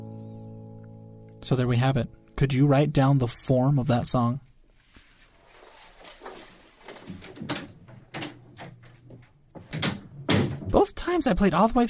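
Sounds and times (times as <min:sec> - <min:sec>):
speech: 0:01.4 - 0:04.4, 0:11.2 - 0:11.8
shuffling steps of someone walking out: 0:04.5 - 0:10.9
door being handled with clunks and rattles: 0:06.2 - 0:11.2.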